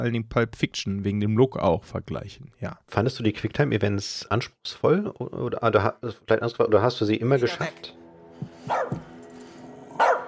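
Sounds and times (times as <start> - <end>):
speech: 0.0 - 9.0
pet dog barking: 8.7 - 9.0, 10.0 - 10.2.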